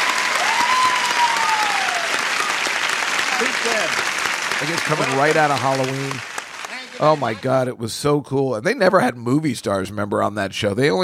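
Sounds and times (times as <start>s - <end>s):
brisk sustained applause from a large studio audience: 0.0s - 7.7s
speech: 3.4s - 6.3s, 7.0s - 11.0s.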